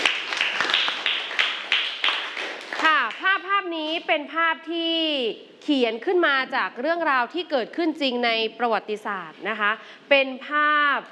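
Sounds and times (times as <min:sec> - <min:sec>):
sparse hand clapping for a student during a lesson: 0:00.0 - 0:03.2
speech: 0:03.7 - 0:11.1.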